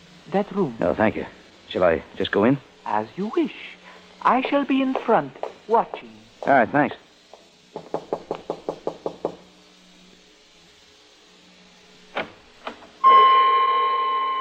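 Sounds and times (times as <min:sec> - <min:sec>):
speech: 0:00.3 - 0:07.0
sharp knocking on a door: 0:07.7 - 0:09.5
loud sustained droning tone: 0:13.0 - 0:14.4.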